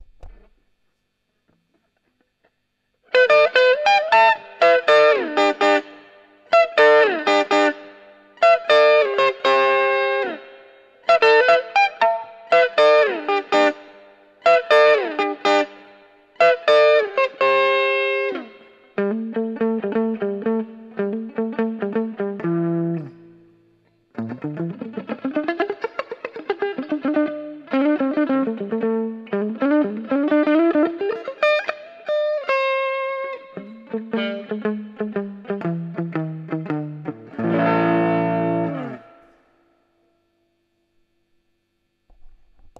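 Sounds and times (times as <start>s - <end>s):
crunch tone from a vacuum tube guitar amplifier: 0.0s - 42.7s.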